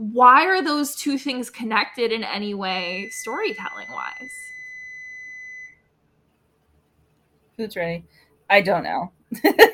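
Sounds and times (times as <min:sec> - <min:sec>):
speech: 0:00.0 - 0:04.5, 0:07.6 - 0:09.7
sustained high-pitched electronic beep: 0:02.6 - 0:05.8.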